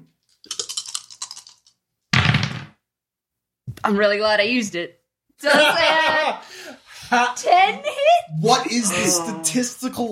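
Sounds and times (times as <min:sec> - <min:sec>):
d6 and d20 dice clattering across a hard surface: 0:00.5 - 0:02.6
speech: 0:03.8 - 0:10.1.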